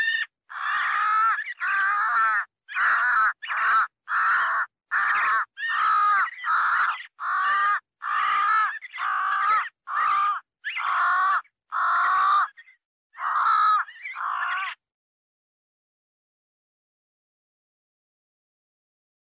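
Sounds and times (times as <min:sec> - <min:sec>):
crow cawing harshly: 0:00.0 - 0:12.6, 0:13.2 - 0:14.8.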